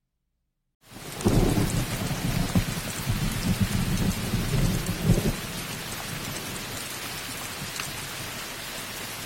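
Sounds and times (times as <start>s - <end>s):
steady hissing rain: 0.8s - 9.2s
deep roll of thunder: 1.0s - 6.7s.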